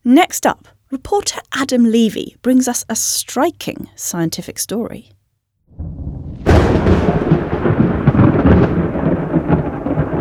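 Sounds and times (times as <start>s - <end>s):
speech: 0.1s - 5.2s
loud thunderclap rolling into a deep rumble from a thunderstorm: 5.7s - 10.1s
steady rain hissing in a thunderstorm: 5.8s - 10.1s.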